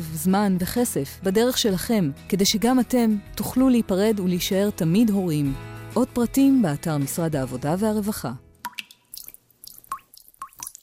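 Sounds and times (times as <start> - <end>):
speech: 0.0 - 8.4
water dripping from a leaky faucet: 8.6 - 10.8.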